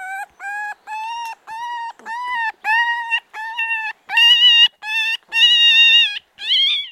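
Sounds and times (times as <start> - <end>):
one-week-old red fox cub whining and squealing: 0.0 - 6.8.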